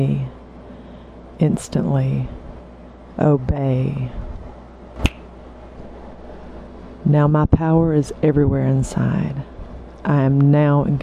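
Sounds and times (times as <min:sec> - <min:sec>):
speech: 0:00.0 - 0:00.3, 0:01.4 - 0:02.4, 0:03.2 - 0:04.2, 0:07.0 - 0:11.0
finger snap: 0:05.0 - 0:05.3.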